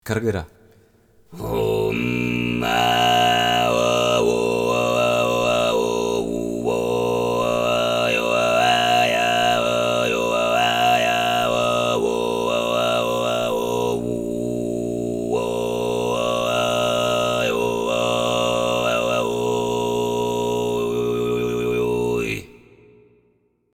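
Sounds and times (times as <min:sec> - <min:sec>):
kargyraa throat singing: 0:01.3 - 0:23.2.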